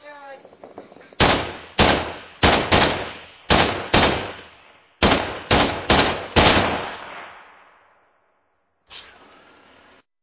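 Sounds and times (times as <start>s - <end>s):
rifle shots: 0.6s - 7.7s.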